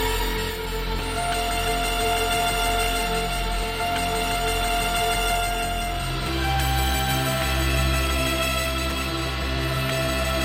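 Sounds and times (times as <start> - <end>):
synthesizers: 0.0 - 10.4.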